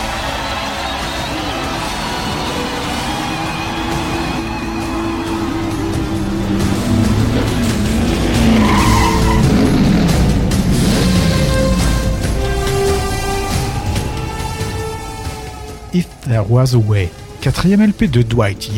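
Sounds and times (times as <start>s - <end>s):
race car engines roaring and whining at the finish line: 0.0s - 18.7s
race car tires screeching: 0.0s - 18.7s
speech: 16.4s - 18.7s.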